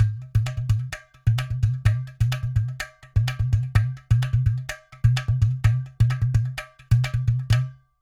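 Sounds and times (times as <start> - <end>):
ghatam percussion loop: 0.0 - 7.9.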